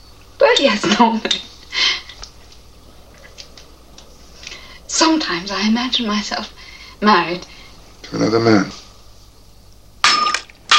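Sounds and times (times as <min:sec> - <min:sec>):
speech: 0:00.6 - 0:01.5, 0:05.1 - 0:07.5, 0:08.1 - 0:08.8
wine glass stem snapping: 0:10.0 - 0:10.7.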